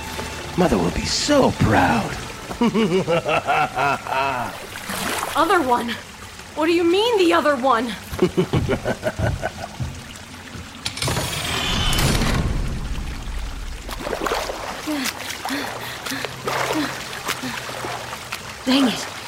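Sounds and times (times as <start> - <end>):
water gushing into a room, flooding it: 0.0 - 19.2
speech: 0.6 - 9.8, 18.7 - 19.1
laughter: 2.6 - 4.6, 8.2 - 9.8.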